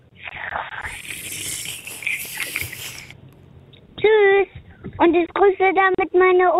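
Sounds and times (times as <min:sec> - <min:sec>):
gurgling slurp through a drinking straw: 0:00.3 - 0:03.2
speech: 0:05.0 - 0:06.5.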